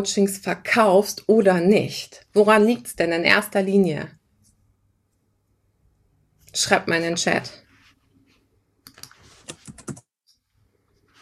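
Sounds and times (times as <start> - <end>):
speech: 0.0 - 4.2, 6.5 - 7.6
typing on a computer keyboard: 8.9 - 10.1.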